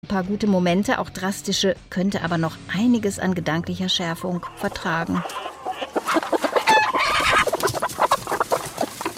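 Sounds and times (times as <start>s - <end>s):
speech: 0.1s - 5.5s
hen clucking and squawking: 3.8s - 9.1s.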